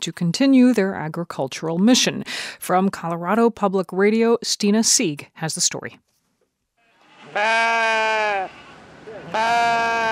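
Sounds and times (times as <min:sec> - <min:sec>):
speech: 0:00.0 - 0:06.2, 0:07.3 - 0:08.6, 0:09.3 - 0:10.0
faint noise: 0:00.0 - 0:10.0
sheep or goats bleating: 0:07.2 - 0:08.5, 0:09.2 - 0:10.0.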